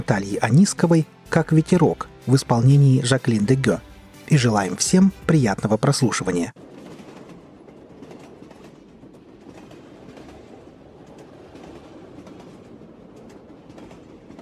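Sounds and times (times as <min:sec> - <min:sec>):
speech: 0:00.0 - 0:06.6
electric train wheels clacking over rail joints inside the moving carriage: 0:06.6 - 0:14.4.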